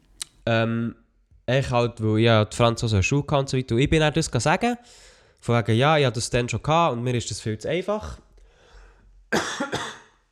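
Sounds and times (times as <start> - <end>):
speech: 0.5 - 8.2, 9.3 - 9.8
person coughing: 9.3 - 10.2.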